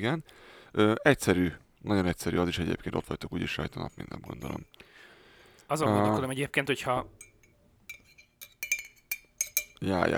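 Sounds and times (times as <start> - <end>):
speech: 0.0 - 4.9, 5.7 - 7.3, 9.8 - 10.1
metal spoon clinking against a porcelain cup of coffee: 3.8 - 4.8, 7.2 - 9.8.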